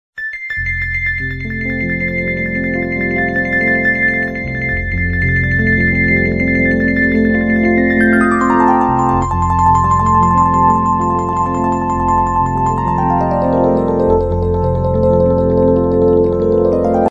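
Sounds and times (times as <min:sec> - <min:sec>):
nature music: 0:00.7 - 0:17.0.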